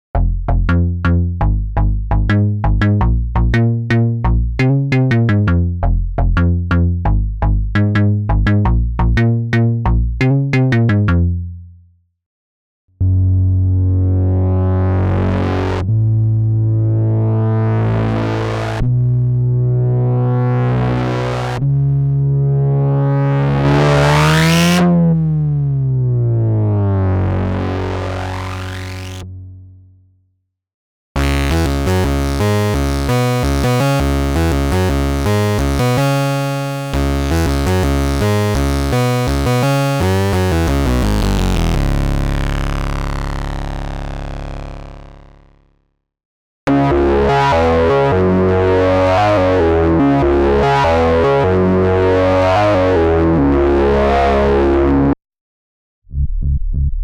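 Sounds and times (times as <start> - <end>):
Moog Sub25 synthesizer bass: 0.1 - 11.6, 13.0 - 29.8, 31.2 - 45.8, 46.7 - 55.2, 56.1 - 57.0.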